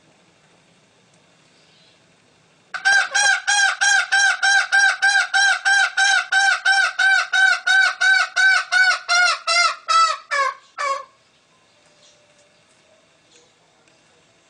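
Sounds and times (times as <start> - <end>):
green junglefowl hen clucking: 2.8 - 11.2.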